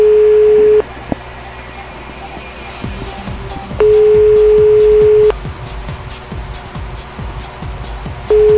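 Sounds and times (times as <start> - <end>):
telephone ringback tone for an unanswered call: 0.0 - 0.9, 3.7 - 5.3, 8.3 - 8.5.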